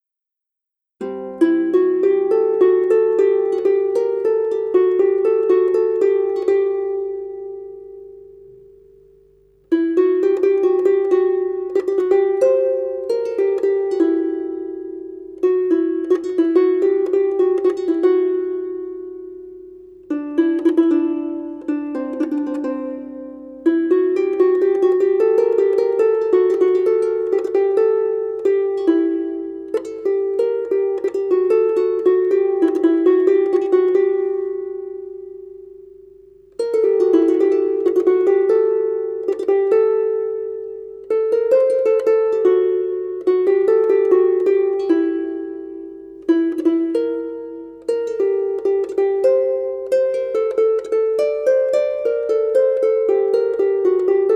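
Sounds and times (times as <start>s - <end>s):
ceng taksim improvisation: 0.9s - 54.3s.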